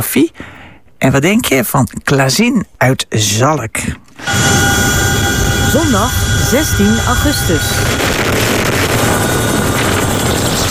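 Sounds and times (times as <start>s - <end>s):
speech: 0.0s - 5.1s, 5.7s - 8.8s
Dutch Chinook helicopter rotor and engine roar fighting a wildfire in Belgium: 4.2s - 10.6s.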